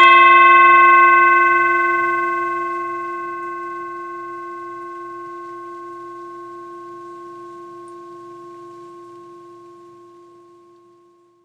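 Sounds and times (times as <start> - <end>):
bowl: 0.0 - 11.4.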